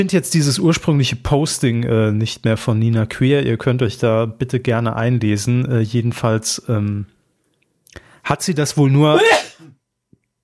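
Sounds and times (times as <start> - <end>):
speech: 0.0 - 7.2, 7.9 - 9.5
person sneezing: 9.1 - 9.7.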